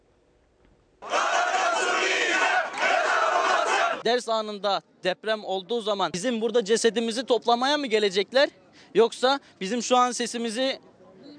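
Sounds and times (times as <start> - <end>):
large group of young people chanting at a protest: 1.0 - 4.0
speech: 4.0 - 10.9.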